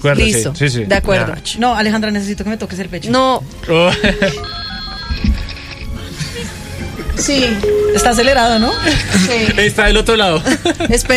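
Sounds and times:
speech: 0.0 - 4.6, 7.2 - 11.1
laughter: 3.7 - 4.6, 8.8 - 11.1
telephone ringing with a bright repeating electronic tone: 3.9 - 6.0, 7.6 - 9.7.

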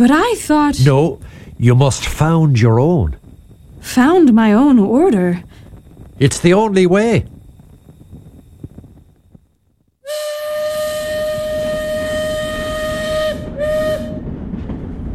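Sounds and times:
speech: 0.0 - 3.2, 3.8 - 5.6, 6.2 - 7.3
train rumbling: 0.0 - 15.1
train steam whistle blowing: 10.0 - 14.3.

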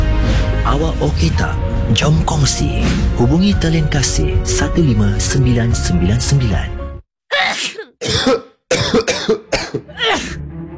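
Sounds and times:
speech: 0.7 - 6.8, 7.6 - 8.4
harsh coughing: 7.3 - 10.4
rough throat clearing: 7.4 - 10.4.

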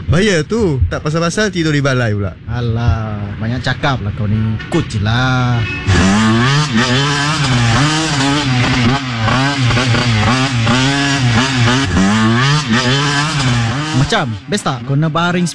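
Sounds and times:
speech: 0.1 - 10.4, 14.0 - 15.5
motorcycle engine revving during street racing: 4.5 - 15.5.

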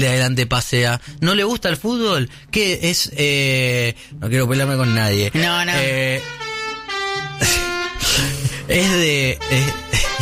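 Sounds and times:
speech: 0.0 - 6.4, 7.4 - 10.2
van horn honking at a slow car ahead in traffic: 4.7 - 10.2.

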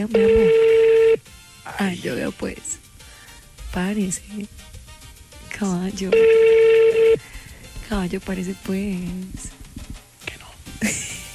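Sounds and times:
speech: 0.0 - 0.5, 1.8 - 2.8, 3.7 - 4.8, 5.6 - 7.3, 7.9 - 9.6
ringing tone on an unanswered phone call: 0.0 - 1.3, 6.0 - 7.2.

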